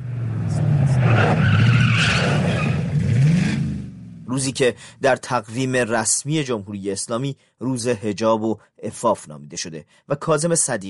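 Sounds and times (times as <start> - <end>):
racing car engines roaring past: 0.0 - 4.3
racing car tires skidding and screeching: 0.1 - 3.9
speech: 4.4 - 10.8.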